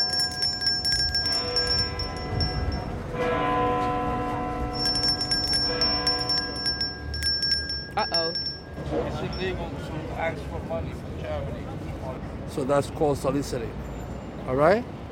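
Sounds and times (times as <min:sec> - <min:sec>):
large bell tolling: 0:00.0 - 0:09.7
speech: 0:09.2 - 0:13.8, 0:14.4 - 0:15.0.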